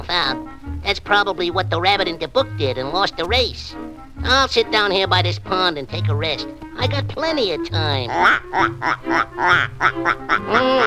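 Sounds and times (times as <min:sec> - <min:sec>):
speech: 0:00.1 - 0:10.8
ducks quacking on a pond: 0:07.7 - 0:10.8.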